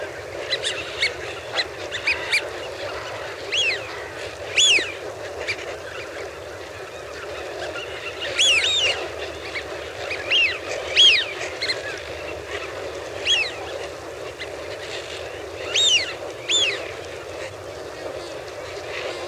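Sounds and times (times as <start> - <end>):
low chatter of a flock of about 1000 Eurasian wigeon grazing at a pool: 0.0 - 19.2
Eurasian wigeon two-part whistled whee-oo calls: 0.4 - 5.8, 8.2 - 11.8, 13.2 - 13.6, 15.6 - 17.0.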